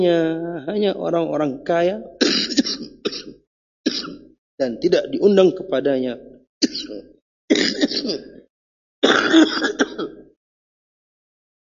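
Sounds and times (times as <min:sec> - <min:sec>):
speech: 0:00.0 - 0:03.4, 0:04.6 - 0:08.3, 0:09.0 - 0:10.2
man coughing and clearing his throat during a religious sermon: 0:02.2 - 0:04.2, 0:06.6 - 0:08.4, 0:09.0 - 0:10.3.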